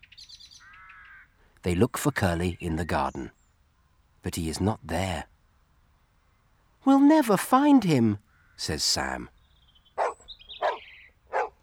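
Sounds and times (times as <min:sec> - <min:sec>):
speech: 0:01.6 - 0:03.4, 0:04.2 - 0:05.3, 0:06.8 - 0:09.4
dog barking with sharp mid-pitched yelps: 0:10.0 - 0:11.6.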